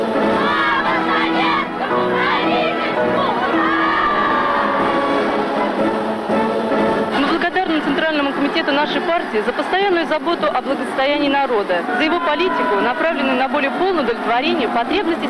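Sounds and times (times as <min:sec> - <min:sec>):
large crowd cheering and shouting: 0:00.1 - 0:05.9, 0:07.0 - 0:15.2
applause: 0:07.6 - 0:15.2
speech: 0:08.6 - 0:15.2.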